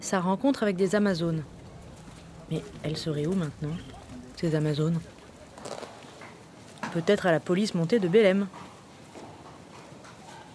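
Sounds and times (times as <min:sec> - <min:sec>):
speech: 0:00.0 - 0:01.6, 0:02.5 - 0:05.1, 0:06.9 - 0:08.7
low outdoor hum: 0:00.0 - 0:10.5
horse hooves clip-clopping at a walk while riding: 0:01.0 - 0:10.5.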